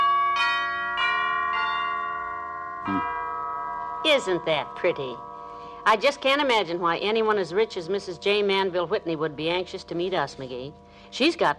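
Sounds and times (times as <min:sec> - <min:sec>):
mansion doorbell chime ringing: 0:00.0 - 0:05.8
speech: 0:02.9 - 0:03.1, 0:04.1 - 0:11.5.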